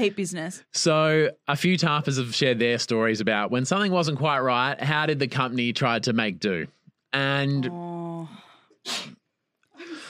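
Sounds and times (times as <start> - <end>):
speech: 0.0 - 9.2
single sharp loud breathy sneeze: 8.9 - 9.2.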